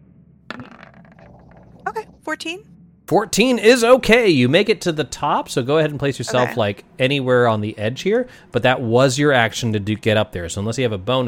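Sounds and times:
die dropping and tumbling on a hard table: 0:00.5 - 0:01.9
speech: 0:02.0 - 0:11.2.

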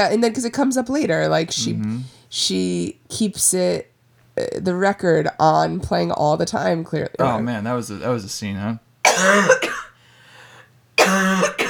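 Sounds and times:
speech: 0:00.0 - 0:09.7
harsh raspy coughing: 0:07.2 - 0:07.6, 0:09.1 - 0:10.0, 0:11.0 - 0:11.6.

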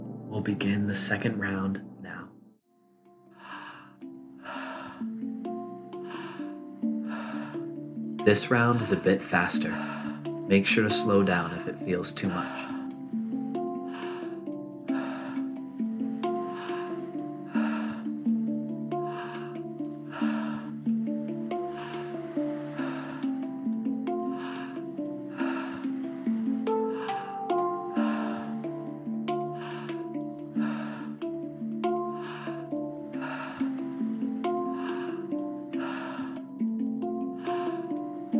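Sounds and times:
speech: 0:00.3 - 0:01.9, 0:08.2 - 0:12.7
fast forceful tummo breathing: 0:03.4 - 0:05.2, 0:05.9 - 0:10.4, 0:12.4 - 0:36.7
constant low tonal hum: 0:04.1 - 0:38.3.

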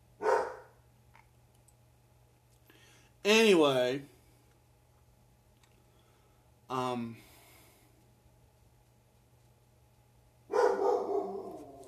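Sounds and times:
speech: 0:03.2 - 0:04.1, 0:06.7 - 0:07.3
dog crying with harmonic whining: 0:10.5 - 0:11.8.

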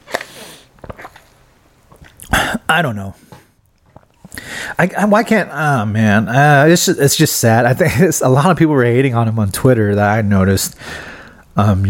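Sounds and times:
person sipping water: 0:00.1 - 0:02.7
speech: 0:02.7 - 0:03.3, 0:04.8 - 0:11.8.

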